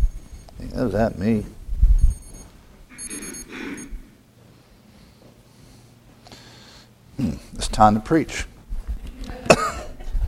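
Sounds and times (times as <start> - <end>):
electronic alarm beeping: 0.0 - 0.8, 2.0 - 4.0
speech: 0.7 - 1.6, 7.2 - 8.5.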